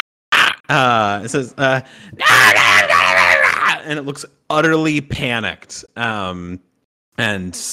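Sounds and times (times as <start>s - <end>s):
speech: 0.7s - 2.9s, 3.8s - 7.7s
voice imitating a wounded lizard-like creature shrieking in panic: 2.2s - 3.9s.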